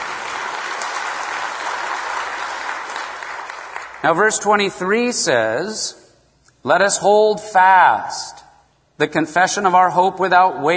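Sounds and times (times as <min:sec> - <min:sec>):
crowd applause: 0:00.0 - 0:04.3
speech: 0:04.0 - 0:06.0, 0:06.6 - 0:08.4, 0:09.0 - 0:10.7.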